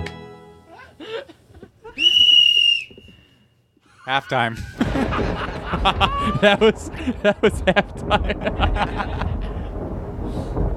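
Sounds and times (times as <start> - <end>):
laughter: 0.7 - 2.0, 3.8 - 9.8
speech: 4.1 - 9.4
thunder rumbling: 4.6 - 10.7
crackling bursts of thunder: 4.7 - 10.7.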